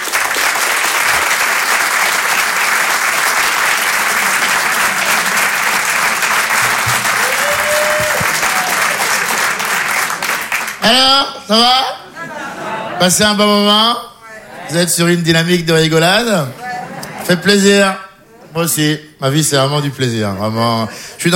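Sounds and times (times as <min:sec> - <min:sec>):
audience applause and ovation at a comedy show: 0:00.0 - 0:10.9
laughter: 0:02.8 - 0:13.7, 0:16.2 - 0:18.6, 0:20.5 - 0:21.3
speech: 0:10.8 - 0:12.0, 0:13.0 - 0:14.1, 0:14.7 - 0:16.6, 0:17.3 - 0:18.0, 0:18.6 - 0:21.3.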